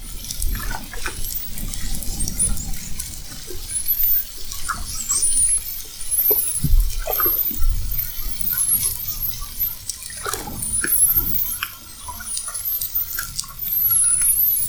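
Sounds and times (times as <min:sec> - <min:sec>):
deep underwater rumble: 0:00.0 - 0:14.6
spinner dolphin clicks: 0:00.2 - 0:14.6
spinner dolphin whistles at Fernando de Noronha: 0:03.7 - 0:14.6.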